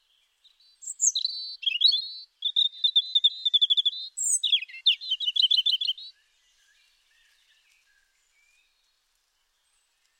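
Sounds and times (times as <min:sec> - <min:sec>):
European robin Erithacus rubecula singing: 0:00.0 - 0:06.2.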